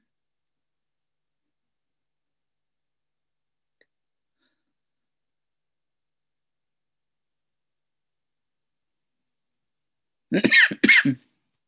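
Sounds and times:
person coughing: 10.3 - 11.3.

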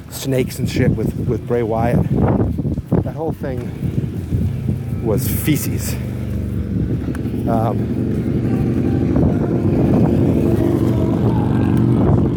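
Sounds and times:
speech: 0.2 - 2.6, 3.2 - 3.9, 5.0 - 6.1, 6.8 - 10.0
motorcycle driving by: 3.6 - 12.3.

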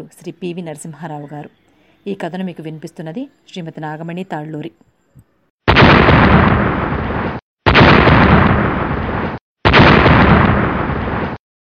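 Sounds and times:
speech: 0.0 - 4.9
bomb explosions in a village at midnight: 5.7 - 11.4.

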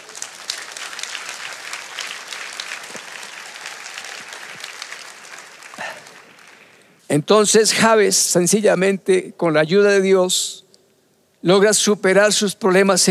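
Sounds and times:
audience applauding: 0.0 - 7.0
speech: 7.1 - 10.6, 11.4 - 13.0.

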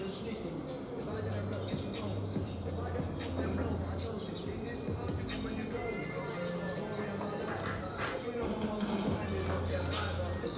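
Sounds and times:
street music heard from inside a guesthouse room: 0.0 - 10.5.

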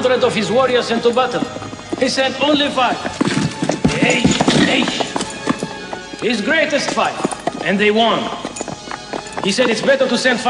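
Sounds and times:
speech: 0.0 - 3.4, 4.0 - 5.0, 6.2 - 8.5, 9.4 - 10.4
horse hooves clip-clopping as horses are ridden through a huge gloomy cave: 0.0 - 10.4.

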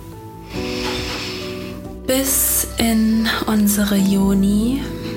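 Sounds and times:
long deep breath drawn in through the nose during a breathing exercise: 0.4 - 1.9
speech: 2.1 - 5.0.

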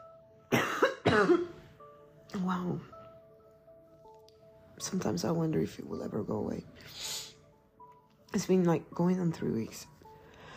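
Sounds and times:
person coughing: 0.5 - 1.6
speech: 1.2 - 1.6, 2.3 - 3.0, 4.8 - 7.2, 8.3 - 10.0.

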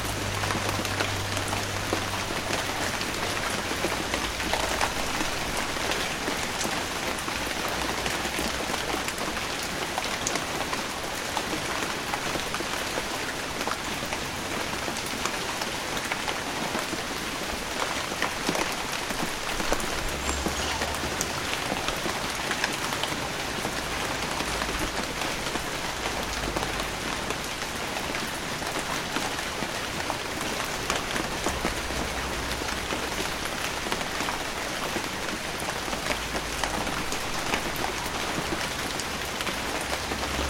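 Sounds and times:
rain falling on a windshield: 0.0 - 40.4.

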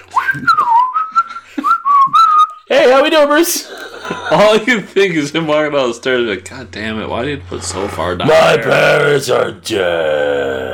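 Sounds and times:
person whistling a short wavering tune: 0.0 - 2.6
speech: 0.3 - 0.7, 3.0 - 3.7, 4.3 - 10.7
laughter: 3.6 - 5.6, 7.5 - 9.3.

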